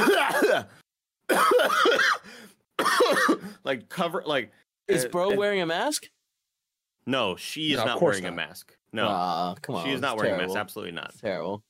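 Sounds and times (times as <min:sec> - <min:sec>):
person imitating coughing: 0:00.0 - 0:00.7, 0:01.3 - 0:02.2, 0:02.8 - 0:03.6
speech: 0:03.7 - 0:06.2, 0:07.0 - 0:11.6.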